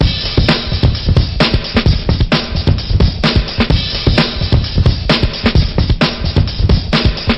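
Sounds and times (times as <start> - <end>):
drum loops and breaks: 0.0 - 7.3.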